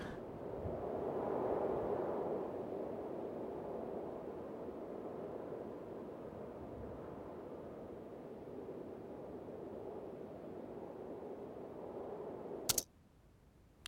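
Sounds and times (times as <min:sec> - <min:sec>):
gusting wind: 0:00.0 - 0:12.8
sharp click: 0:12.7 - 0:12.9.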